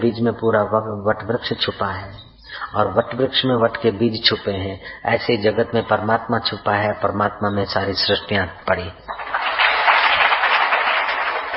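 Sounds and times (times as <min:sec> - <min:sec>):
speech: 0:00.0 - 0:09.2
large crowd clapping: 0:09.1 - 0:11.5.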